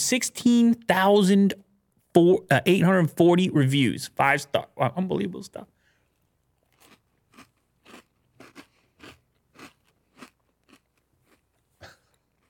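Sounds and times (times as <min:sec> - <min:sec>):
speech: 0:00.1 - 0:05.7
person chewing crunchy cereal: 0:06.0 - 0:12.4.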